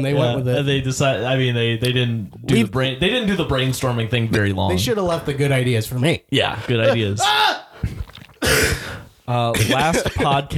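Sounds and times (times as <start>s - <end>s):
speech: 0.0s - 7.9s, 9.3s - 10.5s
low rough throat rumbles: 7.8s - 9.1s
loud harsh cough: 8.4s - 10.5s.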